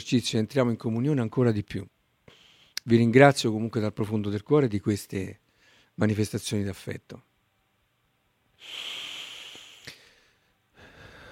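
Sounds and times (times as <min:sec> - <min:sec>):
speech: 0:00.0 - 0:02.0, 0:02.8 - 0:05.4, 0:06.0 - 0:07.3, 0:08.6 - 0:09.0
deep breathing: 0:08.6 - 0:11.2.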